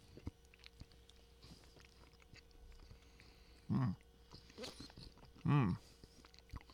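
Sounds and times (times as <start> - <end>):
chewing of brownie ice cream with wet mouth clicks and smacks: 0.0 - 6.7
person humming short mmm sounds while eating: 3.7 - 4.0, 5.0 - 5.8.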